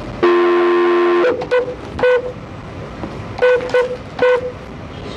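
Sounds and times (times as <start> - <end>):
sustained electronic telephone tone for a conference call: 0.2 - 2.4, 3.4 - 4.6.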